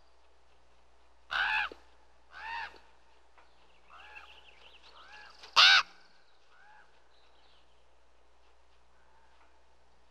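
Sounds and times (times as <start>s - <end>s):
crow giving a harsh loud caw: 1.3s - 2.8s, 5.1s - 6.9s.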